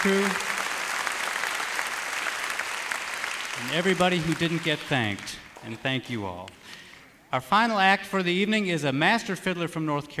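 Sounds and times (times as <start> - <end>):
speech: 0.0 - 0.5, 3.6 - 10.1
audience applause at a concert: 0.0 - 5.6.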